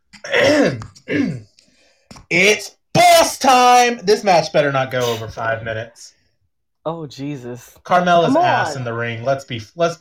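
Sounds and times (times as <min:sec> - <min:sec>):
person clearing throat: 0:00.1 - 0:01.5
speech: 0:02.3 - 0:06.2, 0:06.8 - 0:09.9.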